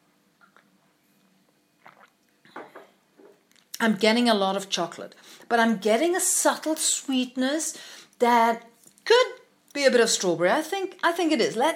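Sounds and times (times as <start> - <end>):
person sipping a piccolo milky coffee drink: 0.4 - 3.8
speech: 3.8 - 11.7.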